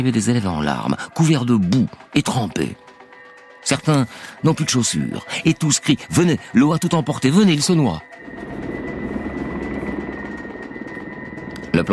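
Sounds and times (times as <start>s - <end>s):
speech: 0.0s - 2.8s, 3.6s - 8.6s, 11.8s - 11.9s
constant helicopter whine: 8.0s - 11.9s
helicopter rotor thrum arriving at a flood rescue scene: 8.2s - 11.9s.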